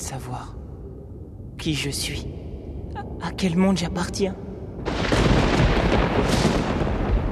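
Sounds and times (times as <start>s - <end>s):
speech: 0.1s - 0.6s, 1.6s - 5.1s
heavy continuous low thunder rumbling: 3.0s - 7.3s
thunderclap as lightning bolt strikes: 4.8s - 7.3s.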